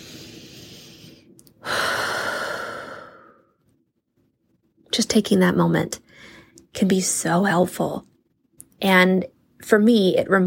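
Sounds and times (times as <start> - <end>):
deep breath taken as a calming pause: 0.0 - 3.6
speech: 5.0 - 8.1, 8.8 - 10.4.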